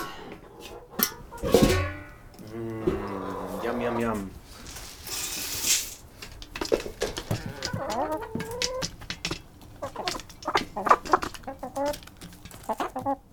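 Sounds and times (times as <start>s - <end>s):
flock of backyard hens clucking and squawking at feeding time: 0.0s - 5.2s, 6.0s - 13.3s
rustling noise: 2.9s - 13.3s.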